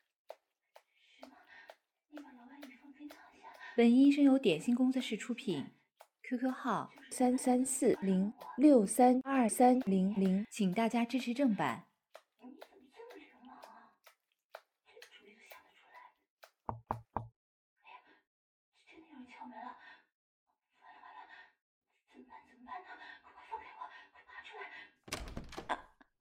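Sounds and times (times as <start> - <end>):
speech: 3.8 - 11.9
quick firm knocks on a door: 16.4 - 17.3.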